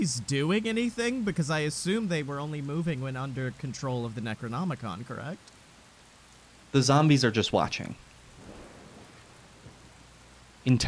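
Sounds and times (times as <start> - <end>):
speech: 0.0 - 5.6, 6.7 - 8.0, 10.6 - 10.8
steady rain: 0.0 - 10.8
low thunder rumbling and rolling: 8.3 - 10.1.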